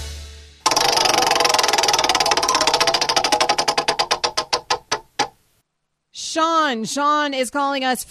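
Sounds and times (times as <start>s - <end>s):
roulette wheel spinning with a whir: 0.7s - 5.4s
speech: 6.7s - 8.1s.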